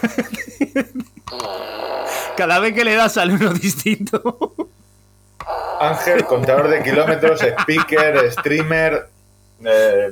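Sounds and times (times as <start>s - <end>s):
laughter: 0.0s - 1.2s, 3.3s - 4.7s, 5.9s - 9.0s
speech: 0.0s - 4.6s, 5.8s - 10.1s
push-button novelty fart machine sputtering fart noise: 1.3s - 3.3s, 5.4s - 8.8s.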